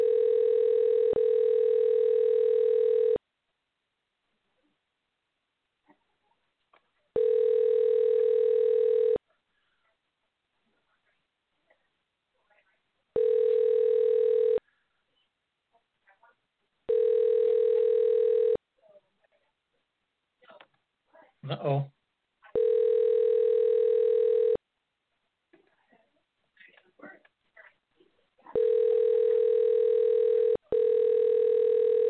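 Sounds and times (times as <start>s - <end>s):
telephone ringback tone of an unanswered call: 0.0s - 3.2s, 7.2s - 9.2s, 13.2s - 14.6s, 16.9s - 18.6s, 22.6s - 24.6s, 28.6s - 32.0s.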